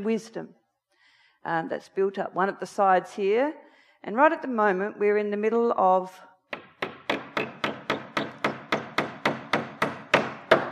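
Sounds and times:
speech: 0.0 - 0.6, 1.4 - 6.3
hammer driving nails into wood: 6.5 - 10.7.

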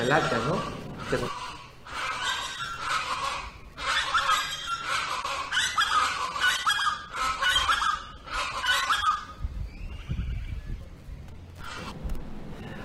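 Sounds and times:
speech: 0.0 - 1.5
rumble: 0.0 - 4.2, 9.3 - 12.8
chorus of chachalacas calling in the morning: 0.0 - 12.0
bird sounds: 0.0 - 12.1.

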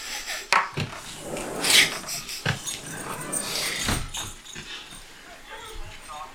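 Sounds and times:
scraping and knocking: 0.7 - 5.1
dog shuffling and moving about: 0.8 - 5.1.

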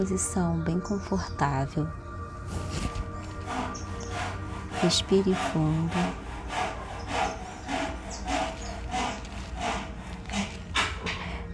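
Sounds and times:
speech: 0.0 - 3.0, 4.8 - 6.2
low hum: 0.0 - 11.5
sawing from a neighbour's construction work: 2.4 - 11.5.

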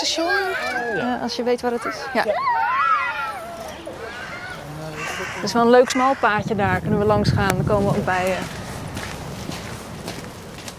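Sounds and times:
speech: 0.0 - 3.0, 5.2 - 8.6
constant outdoor hiss: 0.0 - 10.7
footsteps walking out of a park: 6.7 - 10.7.

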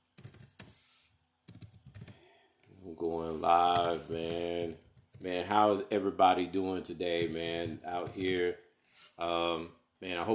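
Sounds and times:
fingers typing on a computer keyboard: 0.2 - 0.7, 1.5 - 2.2, 3.7 - 5.3
speech: 2.8 - 8.6, 9.2 - 10.3.

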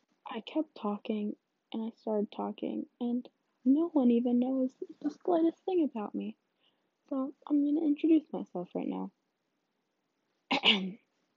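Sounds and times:
speech: 0.3 - 6.4, 7.1 - 9.2, 10.6 - 11.0
person coughing deliberately: 10.5 - 11.0
throat clearing: 10.5 - 11.0.

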